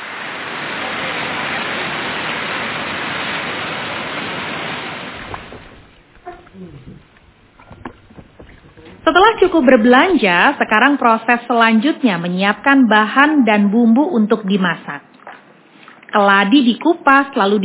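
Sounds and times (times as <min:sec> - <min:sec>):
rain falling: 0:00.0 - 0:10.7
speech: 0:09.1 - 0:15.0, 0:16.2 - 0:17.6.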